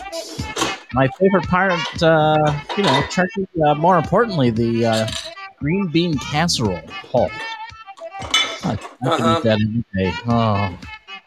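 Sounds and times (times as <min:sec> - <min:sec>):
metal utensils clattering into a kitchen sink: 0:00.4 - 0:00.9, 0:01.7 - 0:03.3, 0:04.7 - 0:05.4, 0:06.9 - 0:09.4
speech: 0:00.9 - 0:07.4, 0:08.6 - 0:10.9.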